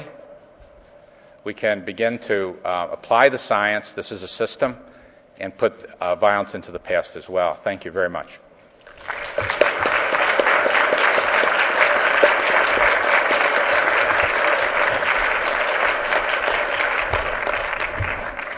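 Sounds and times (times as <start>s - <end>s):
speech: 1.4s - 8.4s
room full of people applauding after a presentation: 8.9s - 18.5s.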